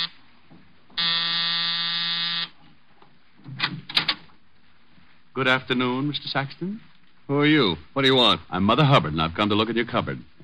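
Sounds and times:
electric door buzzer: 1.0s - 2.6s
speech: 5.4s - 10.4s.

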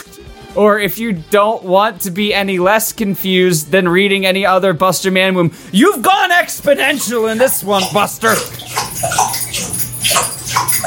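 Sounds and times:
speech: 0.1s - 9.3s
dog lapping water from a water bottle: 6.6s - 10.8s.

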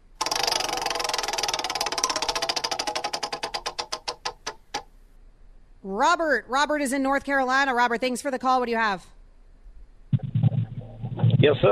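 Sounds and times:
prize wheel spinning and clicking in a radio roulette call-in game: 0.2s - 4.8s
speech: 5.8s - 9.2s, 11.4s - 11.7s.

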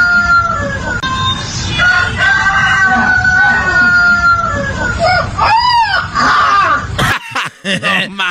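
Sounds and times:
white puppy howling imitating a rooster's crow: 0.0s - 1.0s, 1.7s - 7.0s
laughter: 6.5s - 8.2s.

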